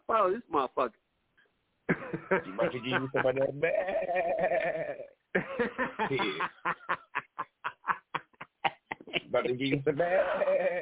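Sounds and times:
speech: 0.1s - 1.0s, 1.9s - 7.0s, 9.3s - 10.8s
laughter: 1.9s - 10.8s
goat bleating: 3.6s - 5.1s, 9.9s - 10.8s.

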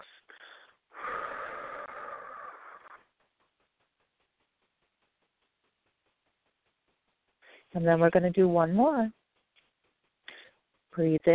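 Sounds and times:
slow exhale of a held breath during a guided relaxation breathing exercise: 0.0s - 3.0s
speech: 7.7s - 9.2s, 11.0s - 11.3s.

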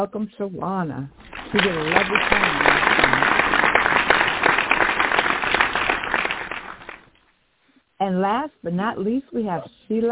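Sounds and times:
speech: 0.0s - 3.4s, 8.0s - 10.1s
crowd clapping in dense overlapping applause: 1.2s - 7.1s.

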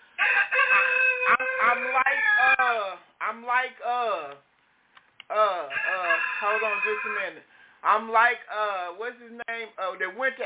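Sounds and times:
rooster crowing: 0.2s - 2.6s, 5.7s - 7.4s
speech: 2.7s - 4.5s, 5.3s - 10.4s.

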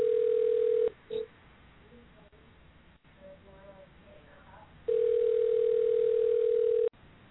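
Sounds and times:
ringback tone of an outgoing surprise phone call: 0.0s - 1.2s, 4.9s - 6.9s.

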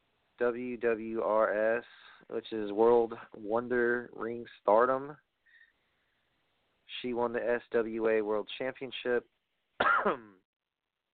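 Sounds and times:
speech: 0.4s - 5.2s, 7.0s - 10.4s
person coughing: 9.8s - 10.4s.

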